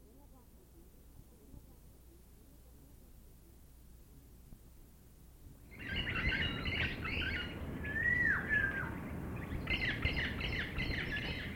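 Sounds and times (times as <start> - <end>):
tropical birds chirping and calling in an aviary: 5.7 - 11.5.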